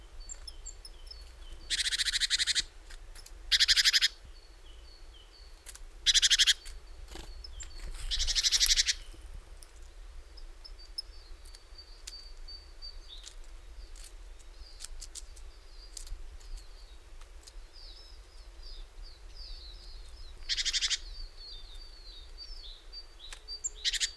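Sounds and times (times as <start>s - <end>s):
Great tit scolding with rasping pulsed churrs: 1.6s - 2.7s, 3.5s - 4.2s, 6.1s - 6.7s, 8.1s - 9.1s, 20.4s - 21.4s, 23.6s - 24.1s.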